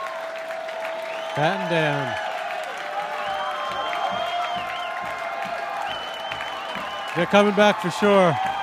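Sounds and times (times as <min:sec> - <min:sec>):
concert crowd applause: 0:00.0 - 0:08.6
large concert crowd cheering: 0:00.0 - 0:08.6
whoops and whistles from concert crowd: 0:00.8 - 0:02.2, 0:03.1 - 0:07.4
speech: 0:01.4 - 0:02.2, 0:07.2 - 0:08.5.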